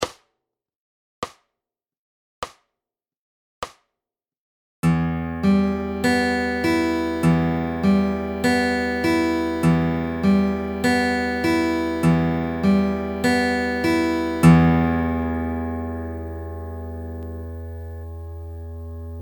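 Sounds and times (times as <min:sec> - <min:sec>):
fingerstyle guitar fingerpicking pattern in E minor: 0:04.8 - 0:19.2.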